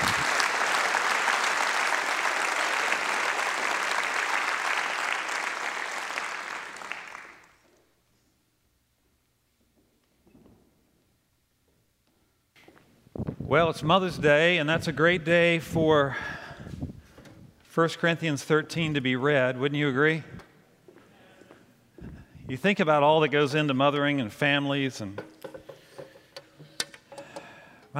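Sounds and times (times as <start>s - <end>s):
large audience applauding after a Bible reading: 0.0s - 7.6s
speech: 13.5s - 16.4s, 17.8s - 20.3s, 22.5s - 25.3s.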